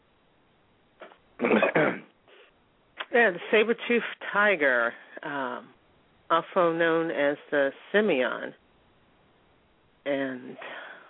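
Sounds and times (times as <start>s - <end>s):
person with a runny nose coughing: 1.4s - 2.1s
speech: 3.2s - 8.6s, 10.0s - 10.8s.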